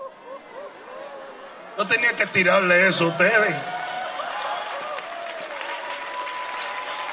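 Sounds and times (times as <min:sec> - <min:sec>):
speech: 0:01.8 - 0:03.8
audience applause: 0:03.2 - 0:07.1.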